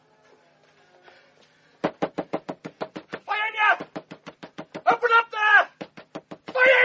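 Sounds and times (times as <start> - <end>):
firm knocks on a house door at night: 1.8 - 4.9, 5.8 - 6.7.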